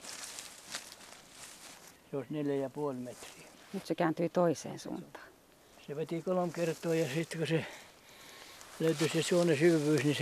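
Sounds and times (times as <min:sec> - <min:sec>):
footsteps crunching on leafy or grassy ground along a road: 0:00.0 - 0:02.0, 0:02.9 - 0:04.0, 0:06.1 - 0:10.2
steady hiss of noise: 0:00.0 - 0:10.2
speech: 0:02.1 - 0:05.3, 0:05.9 - 0:07.8, 0:08.8 - 0:10.2.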